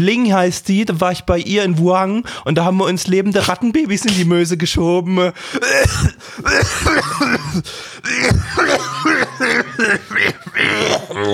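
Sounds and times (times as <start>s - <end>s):
speech: 0.0s - 11.3s
person coughing: 5.5s - 11.3s
throat clearing: 5.6s - 11.3s
chuckle-like voiced sounds: 8.1s - 11.3s.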